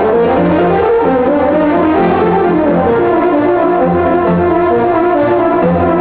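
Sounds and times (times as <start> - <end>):
French horn: 0.0 - 5.9.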